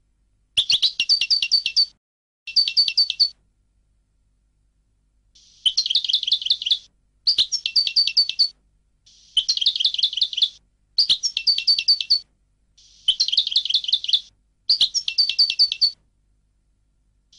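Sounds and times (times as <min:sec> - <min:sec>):
European goldfinch song: 0:00.6 - 0:03.4, 0:05.4 - 0:12.2, 0:12.8 - 0:16.0.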